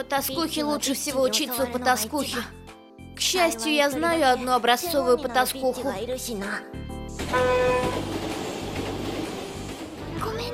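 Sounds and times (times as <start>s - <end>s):
speech: 0.0s - 2.6s, 3.2s - 8.2s
train rumbling along the rails heard by a passenger riding in it: 7.2s - 10.5s
train horn-like tone: 7.3s - 8.1s.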